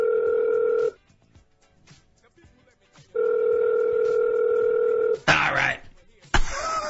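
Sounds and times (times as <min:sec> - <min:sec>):
electronic telephone ringback tone: 0:00.0 - 0:01.0, 0:03.2 - 0:05.2
laughter: 0:06.4 - 0:06.8.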